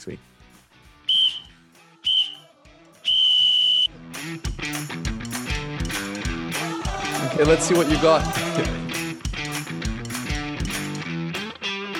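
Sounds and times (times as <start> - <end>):
speech: 0.0 - 0.3, 7.4 - 8.8
music: 0.0 - 11.9
referee's whistle blowing as a final whistle: 1.1 - 3.9.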